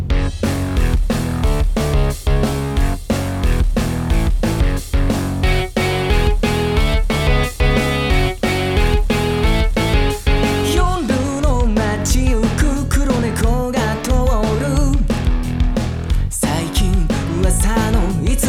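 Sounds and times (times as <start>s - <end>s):
boogie-woogie music: 0.1s - 18.4s.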